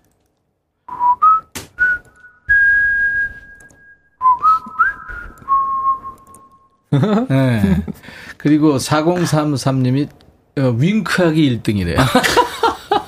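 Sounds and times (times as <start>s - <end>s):
person whistling a short wavering melody: 0.9s - 6.6s
laughter: 6.9s - 8.0s, 12.0s - 13.0s
speech: 7.0s - 12.4s.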